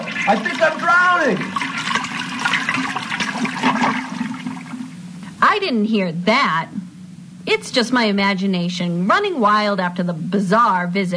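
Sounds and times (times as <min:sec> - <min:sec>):
toilet flushing: 0:00.0 - 0:05.1
speech: 0:00.3 - 0:01.7, 0:05.4 - 0:06.8, 0:07.4 - 0:11.1.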